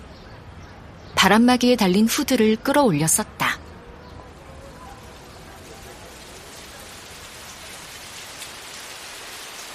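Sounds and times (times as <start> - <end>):
speech: 1.2 - 3.6
heavy rain shower pattering on surfaces: 4.2 - 9.7.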